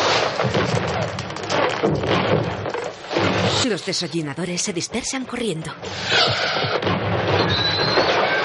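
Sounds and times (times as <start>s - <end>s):
fireworks rockets bursting and crackling over rooftops: 0.0s - 3.9s, 5.8s - 8.4s
speech: 3.6s - 8.1s.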